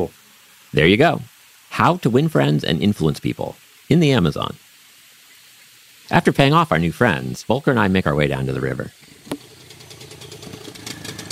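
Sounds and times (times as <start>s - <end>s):
speech: 0.0s - 4.6s, 6.1s - 9.4s
outboard motor driving a long skinny dugout canoe on an Amazon river: 9.1s - 11.3s.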